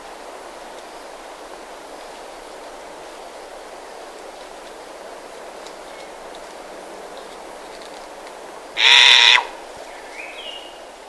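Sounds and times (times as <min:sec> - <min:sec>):
low background hiss: 0:00.0 - 0:11.0
Verreaux's sifaka making a loud buzzy rasping call: 0:08.8 - 0:09.6.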